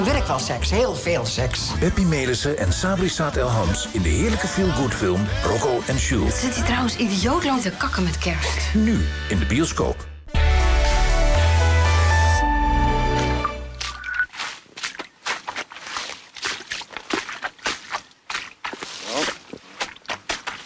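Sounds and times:
speech: 0.0s - 10.1s
music: 0.0s - 14.0s
footsteps squelching through soft peat mud: 13.2s - 20.6s.

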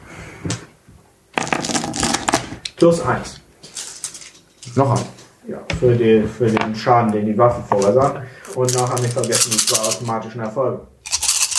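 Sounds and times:
tabletop role-playing dice picked up and rolled across a hard surface: 1.4s - 2.6s, 8.7s - 10.1s
speech: 2.8s - 3.4s, 4.7s - 10.9s.

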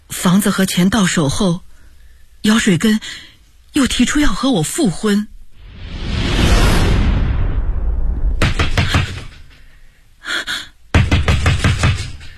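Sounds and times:
speech: 0.2s - 1.7s, 2.4s - 5.3s
loud rushing whoosh: 5.6s - 8.4s
man pounding heavily on a door late at night: 8.4s - 9.5s, 10.9s - 12.3s.

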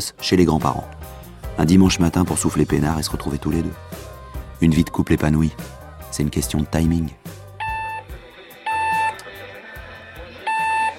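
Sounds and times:
speech: 0.0s - 1.0s, 1.6s - 7.2s
alarm clock beeping with high steady electronic tones: 7.6s - 8.1s, 8.7s - 9.2s, 10.4s - 10.9s.

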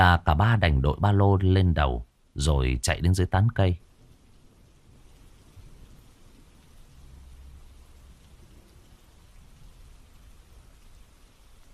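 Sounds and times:
speech: 0.0s - 3.9s
heavy rain falling through dense forest trees in a deep mountain gorge: 3.8s - 11.7s.

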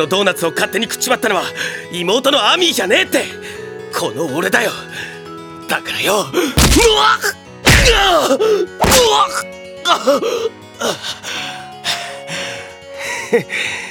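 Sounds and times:
speech: 0.0s - 5.1s, 5.7s - 11.6s, 13.3s - 13.8s
man groaning in pain after being punched: 6.3s - 10.2s
fist punches landing on a man: 6.6s - 8.2s, 8.8s - 9.4s.

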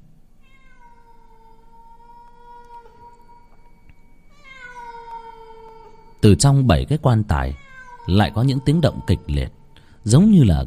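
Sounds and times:
cat yowling mournfully on a roof: 0.4s - 6.2s, 7.3s - 9.6s
speech: 6.2s - 10.6s.

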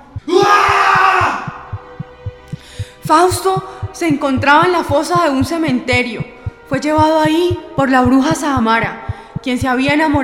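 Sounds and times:
low regular thumping pulses: 0.0s - 10.2s
man screaming desperately: 0.2s - 1.6s
speech: 3.1s - 10.2s.

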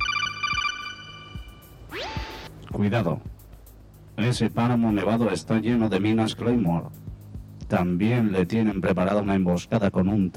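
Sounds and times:
phone ringing with an incoming call: 0.0s - 2.5s
brief rising sweep: 1.2s - 2.5s
speech: 2.7s - 3.4s, 4.2s - 7.0s, 7.7s - 10.3s.

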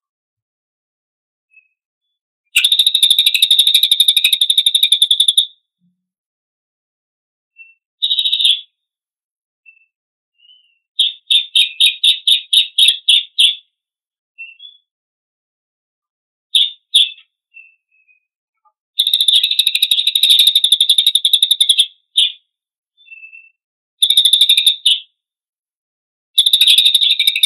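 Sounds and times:
Lesser Racket-tailed Drongo song in tembakan style: 1.5s - 6.0s, 7.5s - 9.0s, 9.6s - 15.0s, 16.5s - 25.3s, 26.4s - 27.4s.

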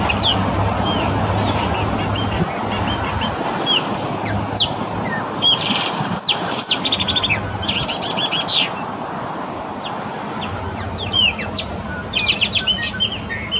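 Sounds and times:
Chopi blackbird Passaro Preto song: 0.0s - 8.9s, 9.8s - 13.5s.

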